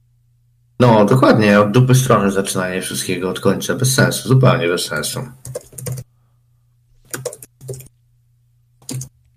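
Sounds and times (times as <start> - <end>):
faint steady low hum: 0.0 - 9.3
speech: 0.8 - 5.7
computer keyboard typing: 5.4 - 6.1, 7.0 - 7.9, 8.8 - 9.2.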